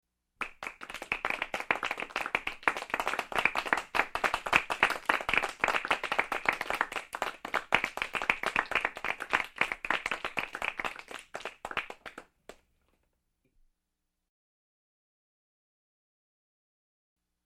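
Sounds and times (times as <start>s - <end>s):
people cheering: 0.4s - 12.2s
small group applauding: 0.4s - 12.7s.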